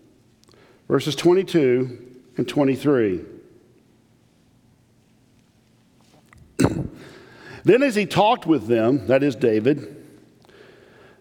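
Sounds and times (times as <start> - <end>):
speech: 0.9 - 3.4, 7.6 - 10.0
sharp throaty cough: 6.6 - 7.2.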